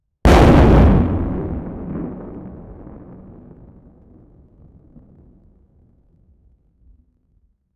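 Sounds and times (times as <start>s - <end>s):
16-bit thunder impact: 0.3s - 5.3s.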